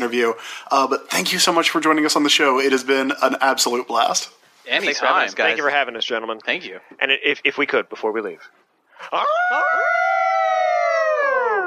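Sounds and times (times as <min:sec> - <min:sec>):
speech: 0:00.1 - 0:10.1
long howl with yelp-like start: 0:09.2 - 0:11.6.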